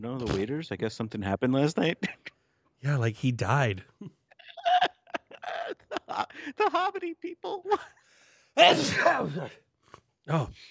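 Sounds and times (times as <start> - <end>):
speech: 0.0 - 4.2, 6.2 - 8.0, 8.6 - 9.6, 10.3 - 10.6
laughter: 3.9 - 8.0
loud sneeze: 8.6 - 9.4.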